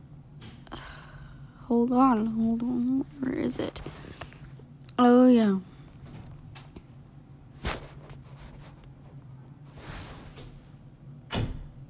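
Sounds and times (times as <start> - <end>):
low steady hum: 0.0 - 11.8
speech: 1.7 - 4.1, 5.3 - 5.7
solid door closing thud: 11.3 - 11.8.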